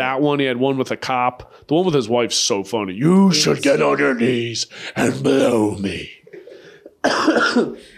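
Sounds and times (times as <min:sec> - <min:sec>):
speech: 0:00.0 - 0:06.2, 0:07.0 - 0:07.9
loud rough raspy cough from an illness: 0:06.4 - 0:07.9.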